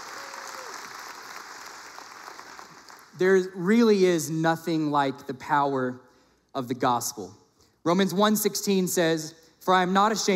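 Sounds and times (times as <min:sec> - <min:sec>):
audience applause: 0:00.0 - 0:03.1
speech: 0:03.2 - 0:06.0, 0:06.6 - 0:10.3.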